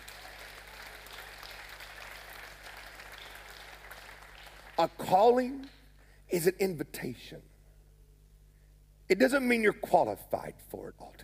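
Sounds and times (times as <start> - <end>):
audience clapping in a large room: 0.0 - 5.9
faint low hum: 0.0 - 11.2
speech: 4.8 - 7.5, 9.1 - 11.2.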